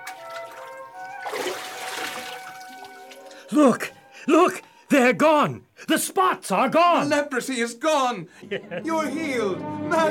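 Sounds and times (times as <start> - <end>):
loud full splash of something plunging into water: 0.0 - 3.3
speech: 3.5 - 10.0
laughter: 8.4 - 9.2.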